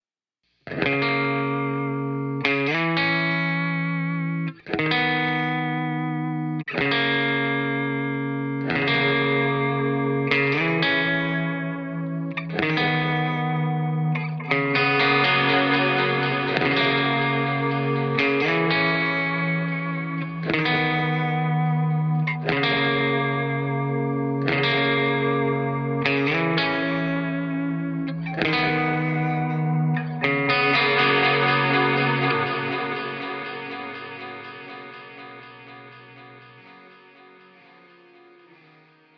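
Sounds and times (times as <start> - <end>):
waves of guitar: 0.7 - 39.1.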